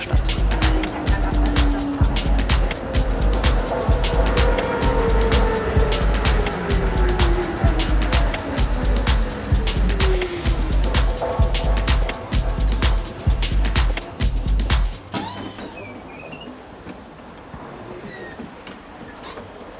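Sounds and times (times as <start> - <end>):
tram in motion rumbling: 0.0 - 15.1
tram electric motor whine: 15.1 - 18.4.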